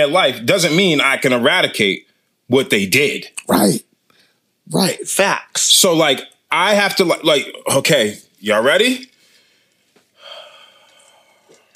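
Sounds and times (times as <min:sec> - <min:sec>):
speech: 0:00.0 - 0:03.9, 0:04.7 - 0:09.1
deep breath: 0:09.2 - 0:11.7.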